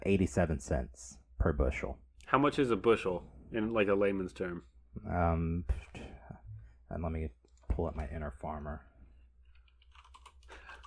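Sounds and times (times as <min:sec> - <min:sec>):
speech: 0:00.0 - 0:06.0, 0:06.9 - 0:08.9
computer keyboard typing: 0:09.5 - 0:10.8.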